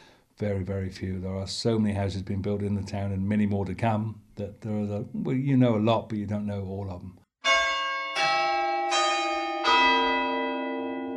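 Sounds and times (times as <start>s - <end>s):
speech: 0.4s - 7.2s
church bells ringing: 7.4s - 11.1s.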